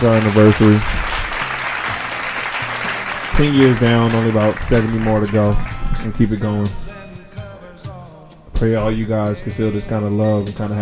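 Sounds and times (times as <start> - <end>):
speech: 0.0 - 1.0, 3.4 - 6.8, 8.6 - 10.8
crowd applauding at a wedding anniversary: 0.0 - 6.0.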